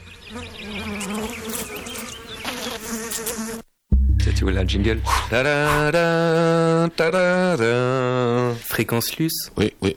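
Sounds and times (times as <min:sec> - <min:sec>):
housefly buzzing: 0:00.2 - 0:03.7
speech: 0:00.3 - 0:00.8, 0:04.4 - 0:09.9.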